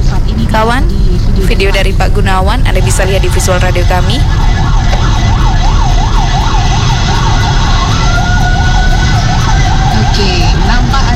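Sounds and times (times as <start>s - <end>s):
rumbling road and engine noise: 0.0s - 11.1s
speech: 0.5s - 5.2s
fire truck siren wailing: 2.5s - 11.1s.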